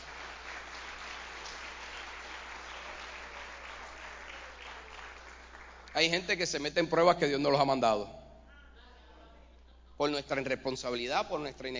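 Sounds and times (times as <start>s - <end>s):
audience applauding: 0.0s - 6.1s
speech: 6.0s - 8.2s, 10.0s - 11.7s.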